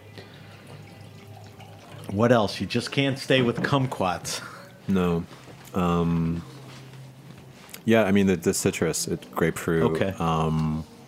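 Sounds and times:
wine pouring into a glass: 0.0 - 6.0
low hum: 0.0 - 11.0
speech: 2.1 - 6.6, 7.9 - 10.9.

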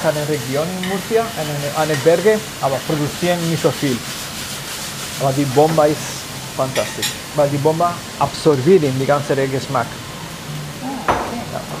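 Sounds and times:
speech: 0.0 - 4.2, 5.2 - 10.0
chicory sizzling in olive oil in a pan: 0.0 - 11.7
faint murmuring voices: 10.7 - 11.7.

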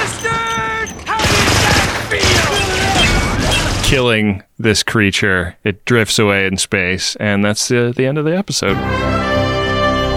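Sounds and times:
steady electronic tones: 0.0 - 1.2, 2.0 - 4.0
machine gun fire shooting holes through the roof of a small runabout spacecraft: 0.8 - 4.0
speech: 3.9 - 9.4.

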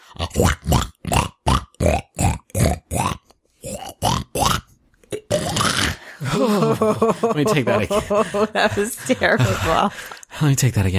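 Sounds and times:
person imitating a pig's grunting oinks: 0.0 - 6.5
speech: 0.1 - 0.9, 6.8 - 10.9
laughter: 6.2 - 10.2.

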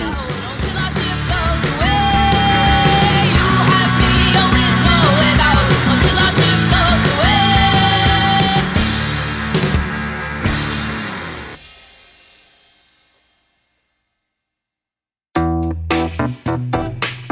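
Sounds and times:
strained shouted-sounding vocal line: 0.0 - 11.3
rock band playing a theme song: 0.0 - 11.6, 15.4 - 17.3.

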